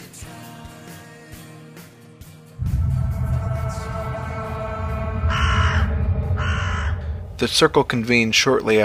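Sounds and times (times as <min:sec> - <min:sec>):
steady low rumble: 0:02.6 - 0:08.8
crows cawing: 0:05.3 - 0:07.1
speech: 0:07.4 - 0:08.8.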